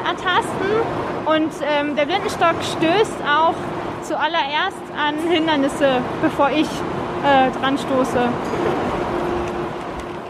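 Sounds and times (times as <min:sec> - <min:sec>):
dense rumbling subway station ambience: 0:00.0 - 0:10.2
escalator descending into a subway station: 0:00.0 - 0:10.2
speech: 0:00.2 - 0:08.9.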